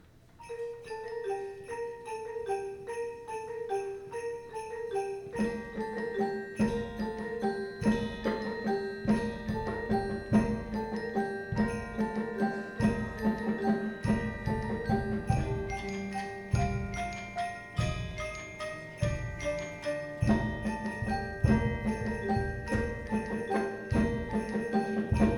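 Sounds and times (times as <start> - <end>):
percussion: 0.0 - 25.3.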